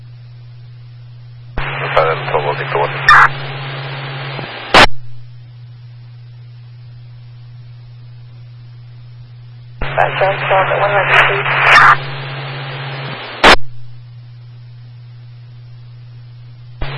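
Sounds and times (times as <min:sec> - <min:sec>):
steady low electronic hum: 0:00.0 - 0:16.9
garbled radio transmissions crackling with harsh static: 0:01.5 - 0:05.2, 0:09.8 - 0:14.0, 0:16.8 - 0:16.9
voice buried in radio noise: 0:01.6 - 0:03.4, 0:09.8 - 0:12.0
speech: 0:02.2 - 0:03.4, 0:10.0 - 0:12.0.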